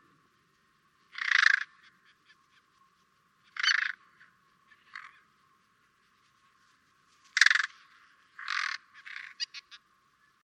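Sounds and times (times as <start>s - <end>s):
carrion crow Corvus corone cawing: 1.1s - 1.8s, 3.5s - 4.1s, 8.4s - 9.8s.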